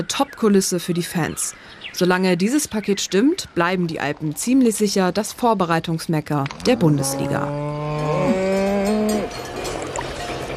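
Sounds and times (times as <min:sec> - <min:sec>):
speech: 0:00.0 - 0:08.4
cow mooing in the Alps: 0:06.6 - 0:09.5.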